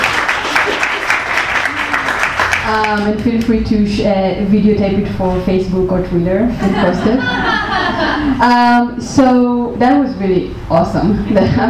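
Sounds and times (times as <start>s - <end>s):
audience applause: 0.0s - 3.1s
speech: 2.7s - 11.6s
laughter: 6.6s - 8.6s.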